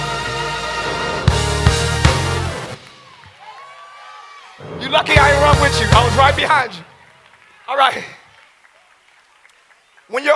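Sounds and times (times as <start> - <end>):
sustained band music: 0.0 - 3.7, 4.5 - 7.0
church audience cheering and shouting: 1.4 - 8.1
speech: 4.9 - 6.9, 7.7 - 8.2, 10.1 - 10.3.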